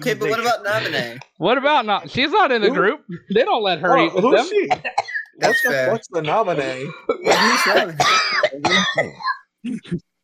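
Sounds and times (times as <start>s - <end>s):
speech: 0.0s - 10.1s
loud raspy hoarse coughing: 4.7s - 9.5s.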